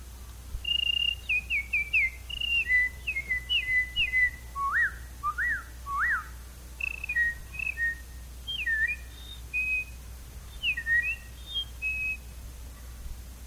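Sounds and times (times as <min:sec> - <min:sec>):
faint low hum: 0:00.0 - 0:13.4
person whistling imitations of small bird calls: 0:00.6 - 0:12.3.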